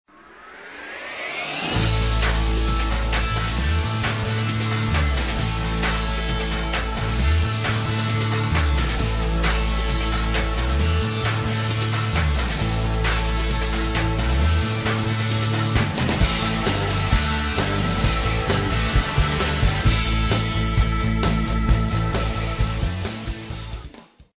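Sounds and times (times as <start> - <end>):
heavy rock music: 1.5 - 24.0.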